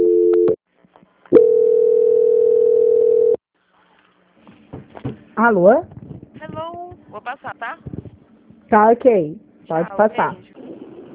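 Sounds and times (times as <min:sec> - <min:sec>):
telephone line tones while a call is being transferred: 0:00.0 - 0:00.6, 0:01.4 - 0:03.4
speech: 0:05.4 - 0:06.0, 0:07.2 - 0:07.9, 0:08.7 - 0:10.6.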